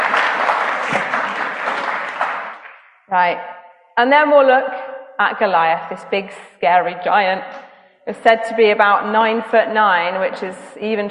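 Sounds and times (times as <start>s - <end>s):
crowd applause: 0.0s - 2.9s
speech: 3.1s - 11.0s.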